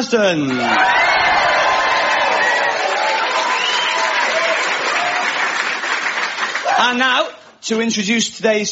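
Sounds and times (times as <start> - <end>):
speech: 0.0 - 1.0, 6.8 - 8.6
studio audience applause: 0.4 - 7.3
studio audience cheers and whoops: 0.5 - 5.6, 6.6 - 7.0.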